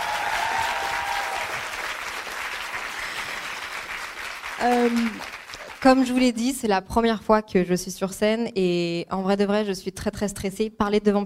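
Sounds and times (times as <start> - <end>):
live audience applauding: 0.0 - 6.2
speech: 4.6 - 11.2.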